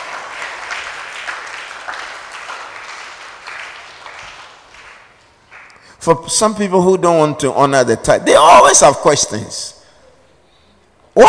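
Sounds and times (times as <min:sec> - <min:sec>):
audience clapping: 0:00.0 - 0:05.9
speech: 0:06.0 - 0:09.8.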